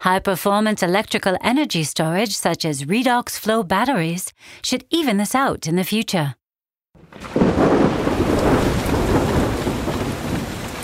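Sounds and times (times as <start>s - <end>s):
speech: 0.0s - 6.4s
deep rumble of thunder in a heavy thunderstorm: 7.0s - 10.8s
loud rain in a heavy thunderstorm: 7.0s - 10.8s.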